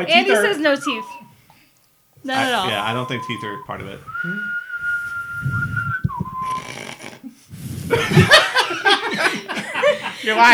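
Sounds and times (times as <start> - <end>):
speech: 0.0 - 1.2, 2.2 - 4.6, 10.2 - 10.5
person whistling with lips: 0.7 - 1.4, 2.6 - 7.1
breathy laughter: 7.2 - 10.2.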